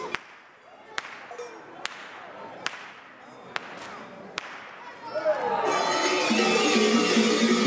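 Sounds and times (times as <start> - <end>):
whip cracking: 0.0 - 3.0, 3.6 - 4.9
crowd applauding and cheering: 5.3 - 7.6.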